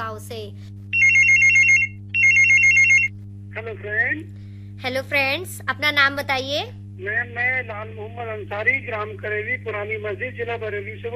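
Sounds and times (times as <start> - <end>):
steady low hum: 0.0 - 11.1
speech: 0.2 - 0.8, 3.6 - 11.1
electronic telephone ringing for a radio phone-in call: 1.0 - 3.1.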